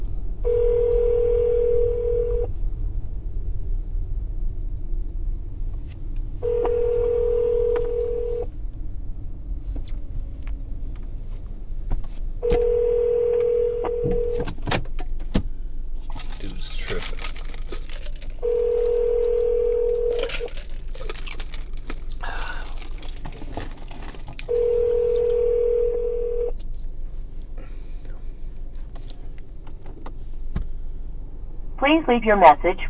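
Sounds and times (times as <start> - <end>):
low rumble: 0.0 - 32.8
outgoing phone call ringback tones: 0.4 - 2.5, 6.4 - 8.5, 12.4 - 14.4, 18.4 - 20.5, 24.5 - 26.5.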